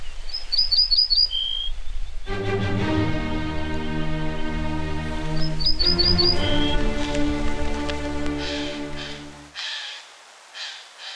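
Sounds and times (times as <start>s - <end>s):
songbird singing: 0.0s - 11.1s.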